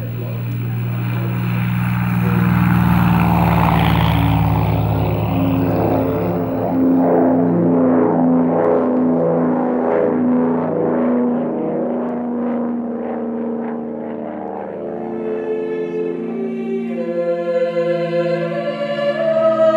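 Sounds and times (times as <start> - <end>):
propeller airplane engine droning and revving: 0.0 - 19.7.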